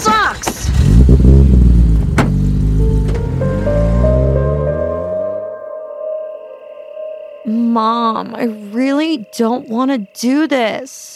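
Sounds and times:
car engine revving as the vehicle pulls away: 0:00.5 - 0:05.6
speech: 0:07.8 - 0:11.1.

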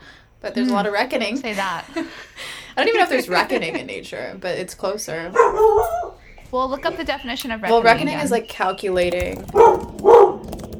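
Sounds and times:
quiet room noise: 0:00.0 - 0:10.7
speech: 0:00.4 - 0:09.8
laughter: 0:01.4 - 0:04.4
dog barking with a tonal yelping quality: 0:05.3 - 0:06.2, 0:09.5 - 0:10.5.

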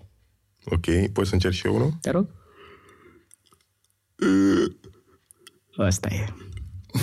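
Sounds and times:
speech: 0:00.6 - 0:02.4, 0:05.8 - 0:07.0
deliberate forced yawn with groaning exhale: 0:04.2 - 0:04.8.

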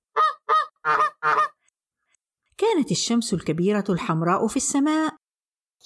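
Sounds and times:
duckling and mother duck quacking in flight: 0:00.2 - 0:01.6
speech: 0:02.7 - 0:05.2.

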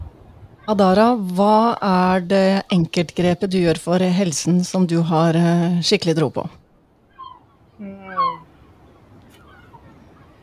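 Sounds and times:
speech: 0:00.7 - 0:06.6
seagull crying in Marrakech Morocco: 0:07.1 - 0:10.4.

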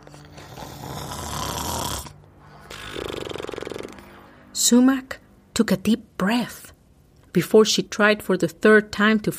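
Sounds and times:
raspy snoring: 0:00.0 - 0:04.2
speech: 0:04.7 - 0:06.7, 0:07.4 - 0:09.3.

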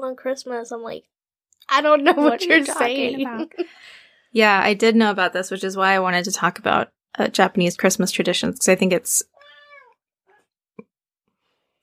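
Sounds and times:
speech: 0:00.0 - 0:09.4
laughter: 0:02.0 - 0:03.7
female cat meowing: 0:09.3 - 0:10.4.

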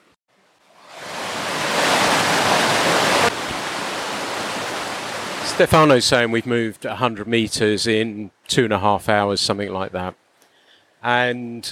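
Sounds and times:
rushing mountain stream water flowing: 0:00.6 - 0:07.1
speech: 0:05.6 - 0:10.2, 0:11.0 - 0:11.7.

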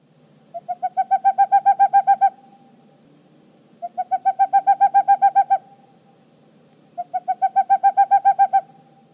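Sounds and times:
boreal owl giving rapid repeated hooting notes: 0:00.5 - 0:02.7, 0:03.8 - 0:05.8, 0:07.0 - 0:09.0.

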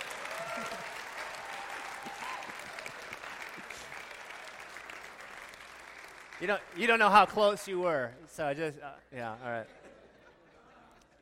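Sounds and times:
audience applause: 0:00.0 - 0:07.6
speech: 0:06.4 - 0:09.8.

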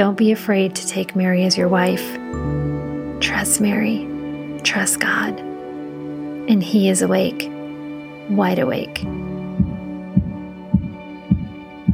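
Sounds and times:
speech: 0:00.0 - 0:02.6, 0:03.2 - 0:05.5, 0:06.5 - 0:07.6, 0:08.3 - 0:09.3
heartbeat pounding hard: 0:09.0 - 0:11.9.

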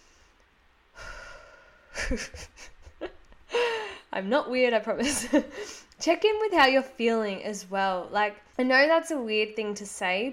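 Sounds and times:
deep breath: 0:00.0 - 0:02.0, 0:03.5 - 0:04.1
speech: 0:02.1 - 0:02.7, 0:04.2 - 0:10.3.

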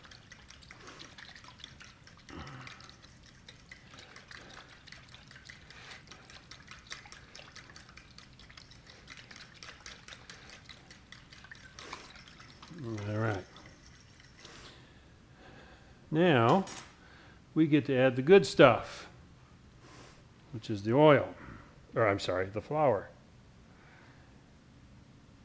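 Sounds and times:
spoon stirring a mixture with salt and oil in a bowl: 0:00.0 - 0:14.8
speech: 0:16.2 - 0:16.8, 0:17.6 - 0:19.1, 0:20.6 - 0:21.4, 0:22.0 - 0:23.1.

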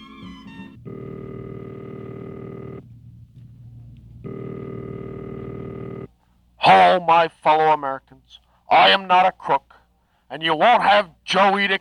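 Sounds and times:
steady telephone ringing tone on the line: 0:00.0 - 0:02.8, 0:04.2 - 0:06.1
speech: 0:06.9 - 0:11.7.

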